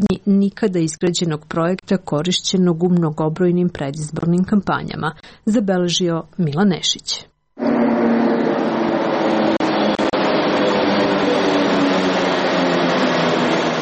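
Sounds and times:
speech: 0.0s - 7.3s
suburban commuter train arriving at platform in railway station cutting: 7.6s - 13.8s.

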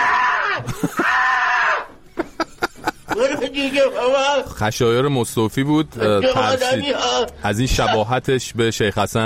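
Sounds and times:
person screaming in fright: 0.0s - 1.9s
laughter: 0.5s - 4.2s
speech: 3.5s - 9.2s.

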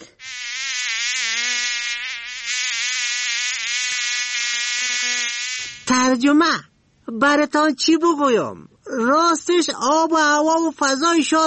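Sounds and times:
mosquitoes and flies buzzing: 0.0s - 6.0s
speech: 5.9s - 11.4s.

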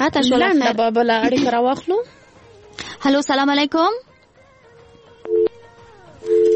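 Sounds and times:
speech: 0.0s - 2.2s, 3.0s - 4.1s
telephone busy signal during a call with connection trouble: 5.3s - 5.6s, 6.3s - 6.5s.

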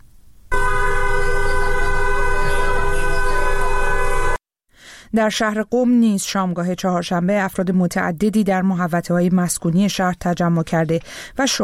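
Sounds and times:
car horns of passing cars honking in support of a street march: 0.5s - 4.4s
speech: 5.2s - 11.6s.

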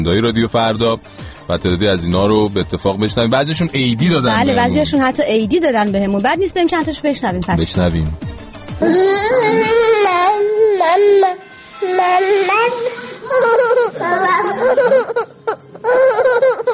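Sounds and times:
speech: 0.0s - 15.3s
baby babbling and laughing: 8.8s - 16.7s.

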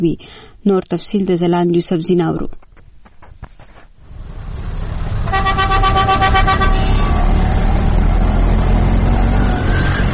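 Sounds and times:
speech: 0.0s - 2.6s
road traffic of cars, buses and rickshaws in a busy bazaar: 4.0s - 10.1s
car horn honking: 5.2s - 7.4s.

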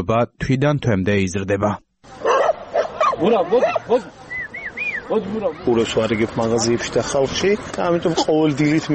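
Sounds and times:
speech: 0.0s - 2.3s, 3.2s - 4.2s, 5.1s - 8.9s
stray dogs barking at a mountain pass: 2.2s - 4.0s.

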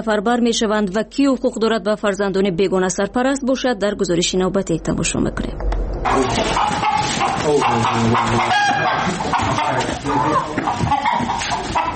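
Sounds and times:
speech: 0.0s - 11.9s
flock of domestic chickens clucking and squawking: 6.0s - 11.9s.

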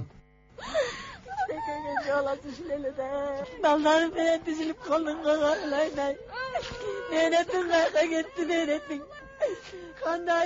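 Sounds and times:
woman wailing and weeping in grief at a landslide site: 0.6s - 2.4s, 6.4s - 10.3s
speech: 2.1s - 10.4s.

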